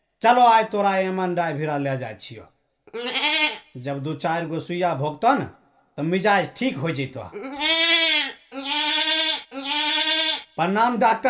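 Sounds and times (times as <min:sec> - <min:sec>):
speech: 0:00.2 - 0:07.8, 0:10.6 - 0:11.2
sick goat bleating: 0:02.9 - 0:03.8, 0:07.3 - 0:10.6.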